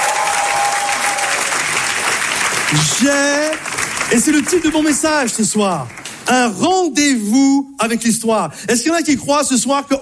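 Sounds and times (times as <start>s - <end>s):
audience applause at an evening gathering: 0.0s - 6.3s
speech: 2.7s - 10.0s.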